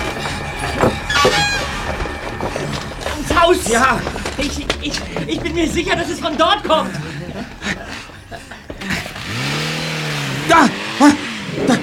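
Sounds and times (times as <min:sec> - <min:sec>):
scuffling: 0:00.0 - 0:10.0
car engine revving as the car drives off: 0:00.0 - 0:11.8
laughter: 0:00.1 - 0:11.8
speech: 0:03.5 - 0:07.1, 0:10.5 - 0:11.1.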